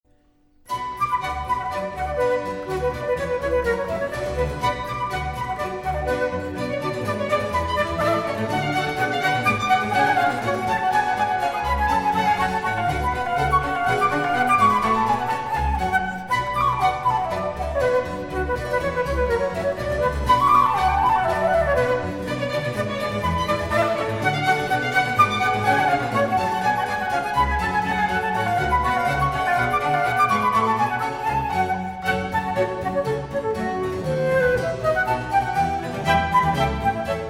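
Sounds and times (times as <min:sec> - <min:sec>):
orchestral suite movement: 0:00.7 - 0:37.2.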